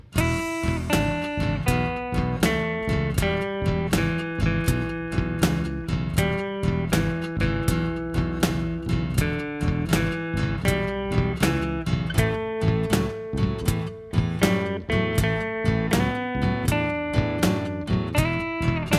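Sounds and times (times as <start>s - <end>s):
blues guitar solo in E: 0.2s - 18.9s.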